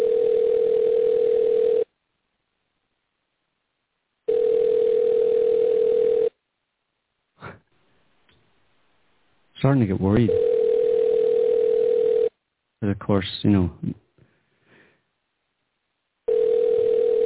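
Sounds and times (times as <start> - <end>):
telephone ringback tones over a phone line: 0.0 - 1.9, 4.3 - 6.3, 10.3 - 12.3, 16.3 - 17.2
speech: 9.6 - 10.5, 12.8 - 14.0.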